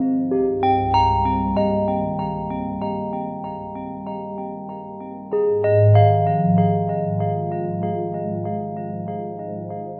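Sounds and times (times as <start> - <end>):
pretty melodic bell loop: 0.0 - 9.9.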